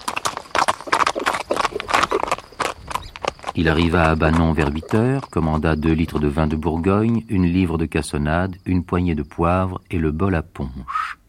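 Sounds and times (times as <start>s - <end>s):
horse trotting with hooves clip-clopping: 0.0s - 7.9s
speech: 3.6s - 11.1s.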